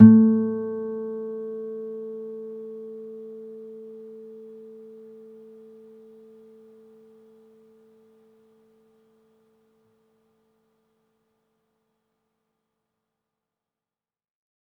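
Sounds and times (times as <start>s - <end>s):
classical guitar harmonics: 0.0s - 6.6s.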